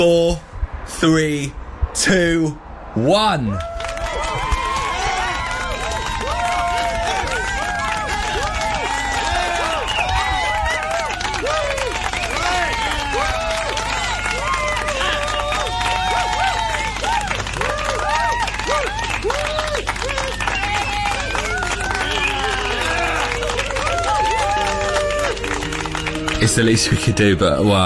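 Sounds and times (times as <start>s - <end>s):
speech: 0.0s - 3.7s, 26.4s - 27.8s
people outdoors shouting: 3.5s - 25.7s
many people outdoors clapping and cheering: 3.5s - 27.8s
scattered whistles from a crowd outdoors: 9.4s - 13.0s, 18.8s - 23.4s.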